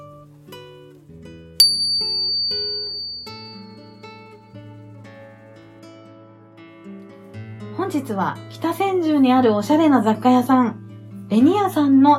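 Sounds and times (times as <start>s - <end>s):
soft calming bell chime: 1.6s - 4.5s
speech: 7.9s - 12.1s.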